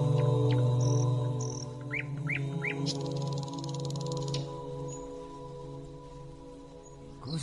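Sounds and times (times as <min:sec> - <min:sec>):
canaries chirping and trilling at night: 0:00.2 - 0:05.1.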